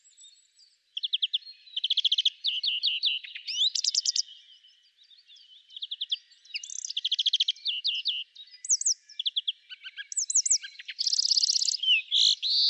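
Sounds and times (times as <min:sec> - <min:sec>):
European greenfinch twittering song: 0:00.0 - 0:12.6.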